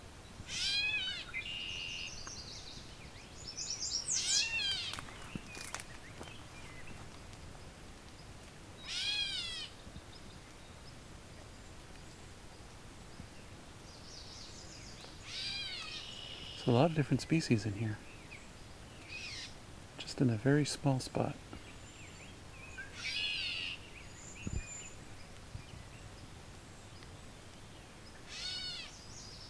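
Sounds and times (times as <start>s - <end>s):
Gray Catbird giving nasal mewing calls: 0.5s - 2.1s, 3.9s - 5.2s, 8.8s - 9.8s, 15.2s - 16.6s, 19.1s - 19.6s, 22.9s - 23.8s, 28.2s - 29.0s
speech: 16.7s - 18.1s, 20.2s - 21.4s.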